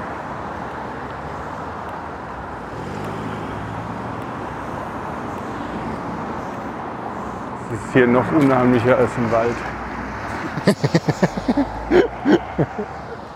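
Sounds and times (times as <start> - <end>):
cars rushing past on a road: 0.0 - 13.3
speech: 7.7 - 9.8, 10.7 - 13.1
laughter: 10.2 - 13.3.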